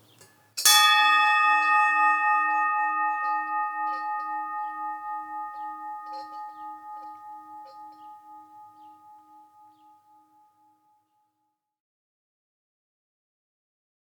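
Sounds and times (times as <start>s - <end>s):
single cow bell struck and ringing: 0.6s - 10.0s.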